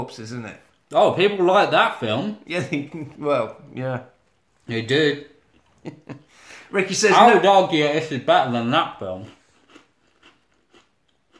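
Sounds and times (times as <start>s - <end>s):
speech: 0.0s - 4.1s, 4.7s - 9.4s
crunchy chewing of a dry digestive biscuit: 9.1s - 11.3s.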